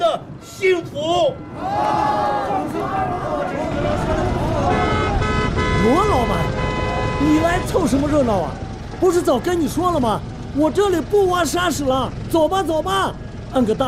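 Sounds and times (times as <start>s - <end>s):
people talking and shouting: 0.0s - 13.8s
truck horn blaring: 1.3s - 8.8s.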